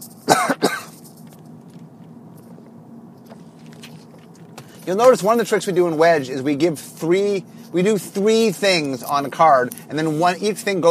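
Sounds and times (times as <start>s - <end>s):
person coughing: 0.2s - 1.0s
speech: 4.8s - 10.8s.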